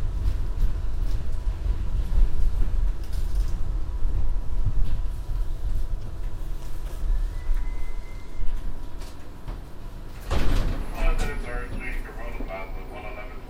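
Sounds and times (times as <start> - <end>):
heavy low rumble inside a subway train car: 0.0 - 13.4
shrill wavering squeals of subway train wheels: 7.0 - 8.8.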